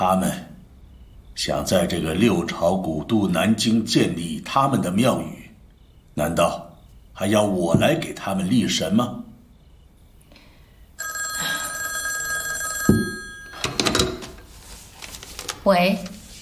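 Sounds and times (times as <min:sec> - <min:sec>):
speech: 0:00.0 - 0:00.5, 0:01.4 - 0:05.4, 0:06.2 - 0:09.2, 0:15.6 - 0:16.1
telephone bell ringing: 0:11.0 - 0:14.4.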